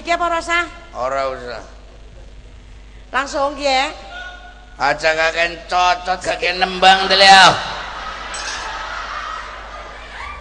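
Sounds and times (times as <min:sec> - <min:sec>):
speech: 0:00.0 - 0:01.8, 0:03.1 - 0:04.1, 0:04.8 - 0:07.7
steady hiss: 0:00.0 - 0:10.3
laughter: 0:07.6 - 0:10.3
glass bottles clinking: 0:08.3 - 0:08.8.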